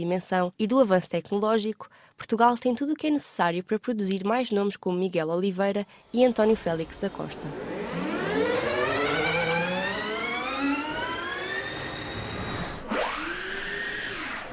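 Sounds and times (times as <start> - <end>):
speech: 0.0 - 7.7
racing engine screaming at a race circuit in the Algarve Portugal: 5.9 - 14.5.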